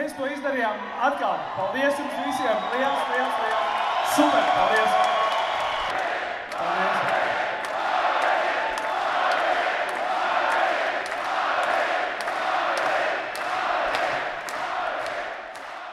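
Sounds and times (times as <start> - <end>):
large crowd at a boxing fight shouting and cheering: 0.0 - 15.9
speech: 0.1 - 5.2
rhythmic sharp claps or thuds: 3.4 - 15.9.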